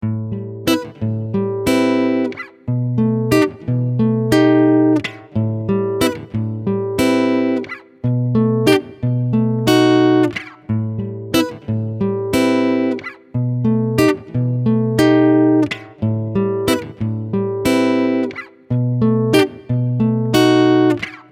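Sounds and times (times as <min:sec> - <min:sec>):
guitar loop in A sharp minor: 0:00.0 - 0:21.3.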